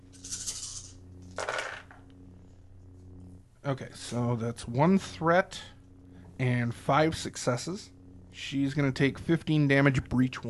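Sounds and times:
low steady hum: 0.0 - 10.4
two black dice rattling across a hard surface in a tabletop game: 0.2 - 2.0
speech: 3.6 - 5.7, 6.4 - 10.4.

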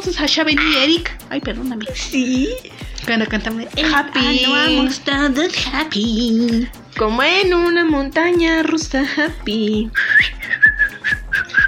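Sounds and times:
steady rhythmic low thumping beat: 0.0 - 11.6
speech: 0.1 - 10.4
person whistling a tune poorly: 10.0 - 11.6.

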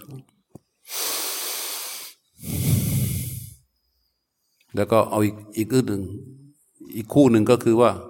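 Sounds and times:
breathing out through the nose during a breathing exercise: 0.8 - 3.7
speech: 4.8 - 6.3, 6.9 - 8.0.

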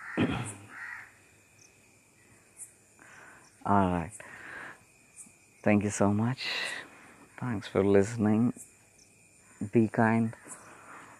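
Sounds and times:
crows cawing in the early morning: 0.0 - 1.2
speech: 0.2 - 0.6, 3.6 - 4.2, 5.6 - 6.8, 7.4 - 8.7, 9.6 - 10.5.

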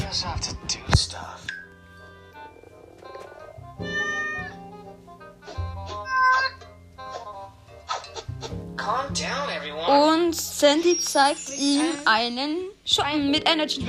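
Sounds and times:
cat meowing: 2.7 - 4.8, 5.9 - 6.6
speech: 9.2 - 13.8.

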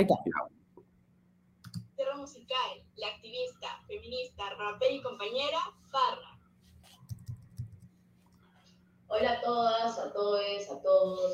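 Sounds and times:
speech: 0.0 - 0.6, 2.2 - 6.4, 9.1 - 11.3
faint low hum: 0.0 - 11.3
computer mouse click: 1.6 - 1.9, 7.1 - 8.4.

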